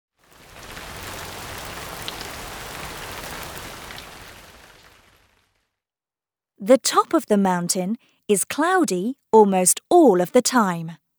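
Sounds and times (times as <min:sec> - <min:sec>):
heavy rain: 0:00.2 - 0:05.6
speech: 0:06.6 - 0:11.0.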